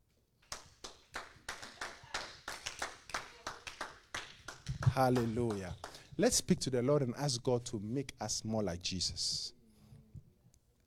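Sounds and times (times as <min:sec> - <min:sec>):
audience clapping along in rhythm: 0:00.4 - 0:06.4
speech: 0:05.0 - 0:09.6.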